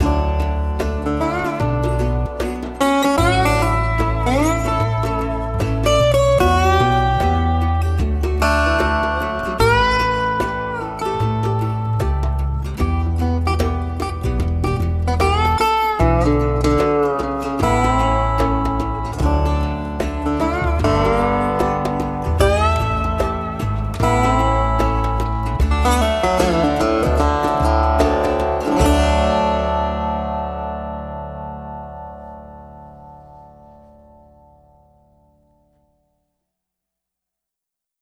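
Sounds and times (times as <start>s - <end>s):
slide guitar music at 75 bpm: 0.0s - 35.8s.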